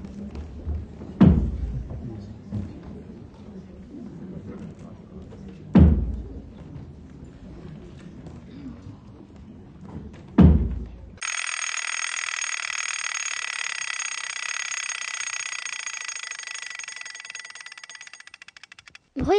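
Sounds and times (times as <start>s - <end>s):
short low thump: 1.2s - 1.8s, 5.8s - 6.3s, 10.4s - 11.0s
mechanical alarm clock bell ringing: 11.2s - 19.0s.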